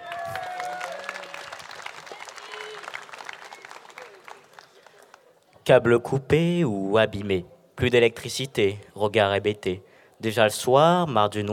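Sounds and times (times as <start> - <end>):
audience applause with dense clapping: 0.0 - 5.4
speech: 5.7 - 11.5.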